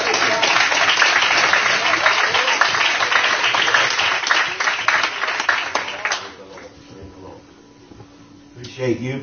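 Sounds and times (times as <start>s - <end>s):
large church crowd applauding: 0.0s - 6.8s
speech: 8.8s - 9.2s.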